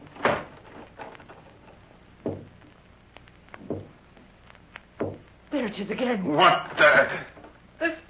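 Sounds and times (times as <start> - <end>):
house door shut with a solid thud: 0.2 - 0.7, 2.2 - 2.5, 3.6 - 4.0, 5.0 - 5.2
dull wooden knocks: 2.2 - 2.6, 3.6 - 4.0, 5.0 - 5.3
speech: 5.6 - 8.0.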